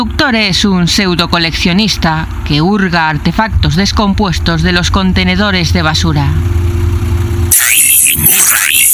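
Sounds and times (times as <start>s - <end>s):
speech: 0.0s - 6.6s, 7.6s - 8.6s
car engine humming at slow idle moving through a misty alley: 0.0s - 8.9s
brighter noisy wash with warbling sliding tones: 3.3s - 8.9s.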